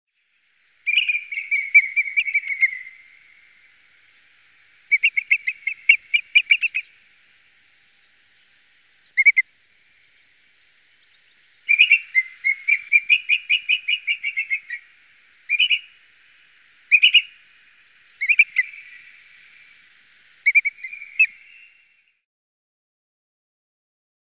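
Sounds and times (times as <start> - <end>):
booted eagle: 0.8 - 3.7, 4.9 - 7.0, 9.0 - 9.5, 11.1 - 16.1, 16.9 - 19.7, 20.4 - 21.7.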